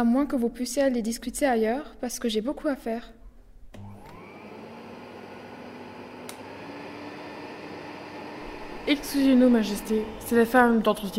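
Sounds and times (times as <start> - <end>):
speech: 0.0 - 3.2, 8.9 - 11.1
vacuum cleaner used by a cleaning woman running: 3.8 - 11.1.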